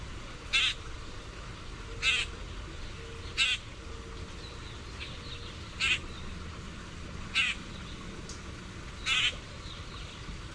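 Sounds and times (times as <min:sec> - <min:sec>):
Common grackle grating calls: 0:00.5 - 0:00.8, 0:02.0 - 0:02.3, 0:03.3 - 0:03.7, 0:05.8 - 0:06.2, 0:07.3 - 0:07.7, 0:09.0 - 0:10.2.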